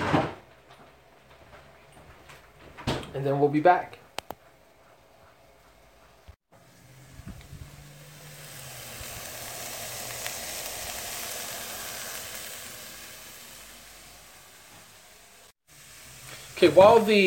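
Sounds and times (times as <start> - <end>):
speech: 3.2 - 4.0, 16.6 - 17.2
onions, carrots and seasonings sautéing in olive oil: 6.6 - 17.2.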